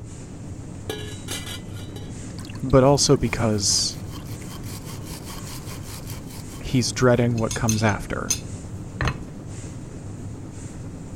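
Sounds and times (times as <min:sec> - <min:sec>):
low steady hum: 0:00.0 - 0:11.1
speech: 0:00.9 - 0:01.4, 0:02.6 - 0:04.0, 0:06.7 - 0:08.4
dishes clinking while being washed: 0:00.9 - 0:02.7, 0:07.3 - 0:09.2.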